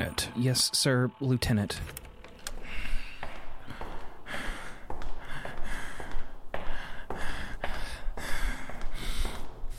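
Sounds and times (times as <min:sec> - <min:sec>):
speech: 0:00.4 - 0:02.0
heavy rapid anxious breathing with gasping inhales and exhales: 0:02.5 - 0:09.7.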